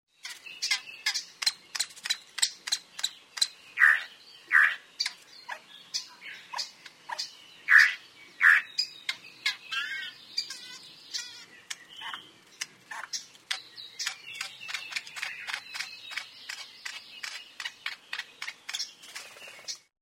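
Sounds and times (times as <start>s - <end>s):
akohekohe: 0.2s - 19.9s.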